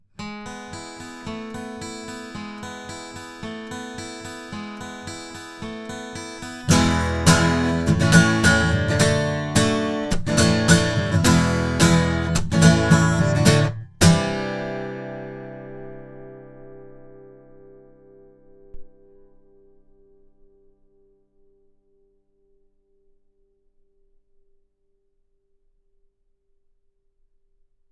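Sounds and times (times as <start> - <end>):
acoustic guitar recorded with cardioid microphone: 0.0 - 21.1.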